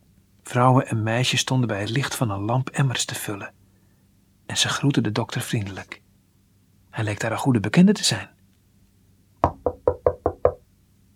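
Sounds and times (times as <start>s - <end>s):
speech: 0.5s - 3.6s, 4.5s - 6.0s, 7.0s - 8.4s
doctor knocking on the wooden door of a small house: 9.4s - 10.6s.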